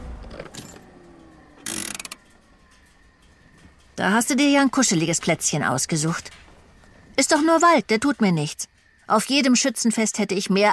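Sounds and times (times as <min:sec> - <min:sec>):
car engine hum winding down and switching off: 0:00.0 - 0:04.0
keys rattling: 0:00.3 - 0:05.6
speech: 0:04.0 - 0:06.4, 0:07.2 - 0:10.7.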